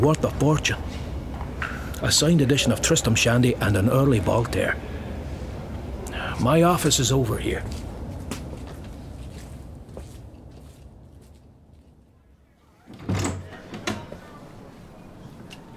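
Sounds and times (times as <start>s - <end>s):
speech: 0.0s - 1.0s, 2.0s - 4.9s, 6.4s - 7.8s
steady low room hum: 0.0s - 15.7s
door opening: 12.8s - 15.7s.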